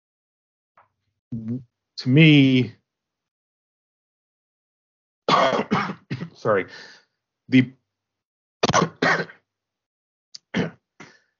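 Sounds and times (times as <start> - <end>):
speech: 1.3 - 2.8, 6.4 - 7.8, 8.7 - 9.4
person coughing: 5.3 - 6.4, 8.6 - 9.4.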